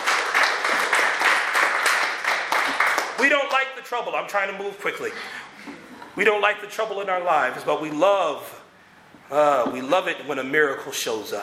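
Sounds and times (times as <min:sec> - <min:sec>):
crowd clapping hands: 0:00.0 - 0:03.7
speech: 0:03.2 - 0:08.6, 0:09.3 - 0:11.4.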